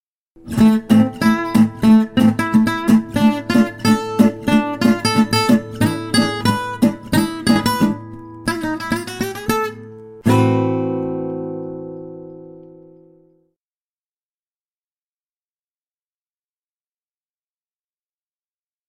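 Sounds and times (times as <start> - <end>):
guitar playing a swing outro: 0.4 - 13.4.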